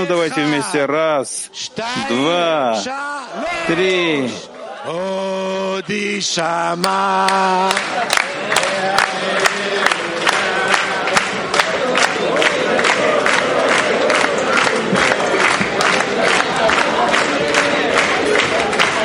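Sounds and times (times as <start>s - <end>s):
speech: 0.0s - 10.0s
crowd cheering and shouting: 0.0s - 19.0s
sharp rhythmic claps: 5.9s - 19.0s.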